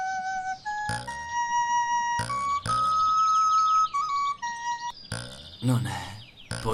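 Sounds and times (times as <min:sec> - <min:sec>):
small whistle playing a lively tune: 0:00.0 - 0:05.0
speech: 0:05.6 - 0:06.7.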